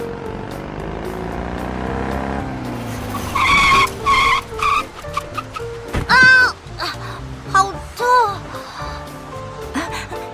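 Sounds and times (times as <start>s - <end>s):
car tires skidding under hard braking: 0.0s - 7.4s.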